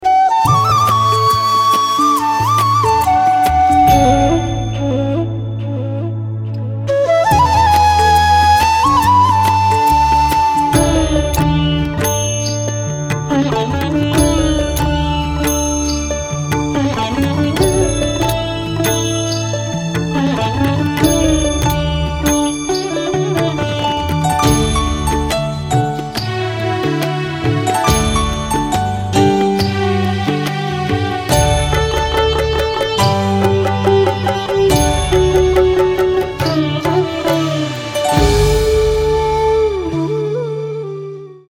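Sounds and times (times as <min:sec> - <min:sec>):
instrumental flute music: 0:00.0 - 0:41.5.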